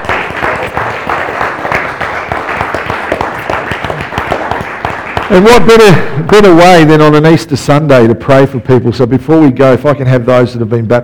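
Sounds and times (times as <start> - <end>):
large group at an Easter Sunday church service applauding: 0.0 - 6.6
speech: 5.3 - 11.0.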